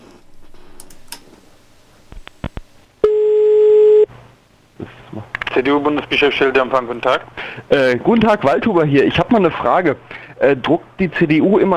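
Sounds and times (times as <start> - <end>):
faint phone line noise: 0.0 - 8.1
ringing tone of an outgoing phone call: 3.0 - 4.1
speech: 5.6 - 11.7.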